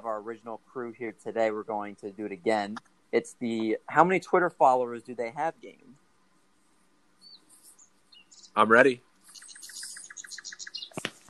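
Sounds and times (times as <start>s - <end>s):
speech: 0.0s - 6.0s, 8.6s - 9.1s
high-pitched bird chirps: 7.2s - 11.2s.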